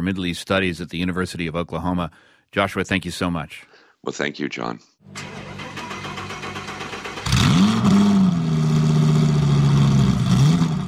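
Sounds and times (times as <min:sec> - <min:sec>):
speech: 0:00.0 - 0:05.4
NASCAR stock car engine roaring: 0:05.1 - 0:10.8.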